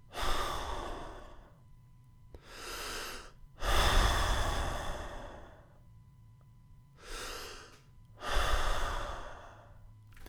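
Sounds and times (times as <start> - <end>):
slow relaxed breathing with long airy exhales: 0.0 - 1.6, 2.3 - 5.9, 6.9 - 9.9.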